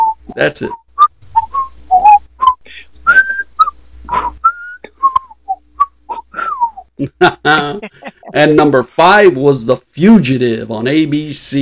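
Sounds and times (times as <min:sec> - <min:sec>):
speech: 0:00.4 - 0:00.8, 0:07.1 - 0:11.6
person whistling a TV show theme tune: 0:01.0 - 0:06.9
laughter: 0:06.1 - 0:09.0.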